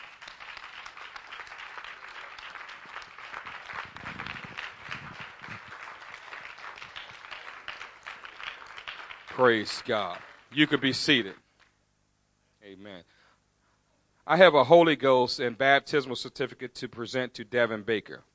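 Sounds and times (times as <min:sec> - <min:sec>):
audience at a church service applauding: 0:00.0 - 0:11.2
speech: 0:09.4 - 0:11.4, 0:14.3 - 0:18.3.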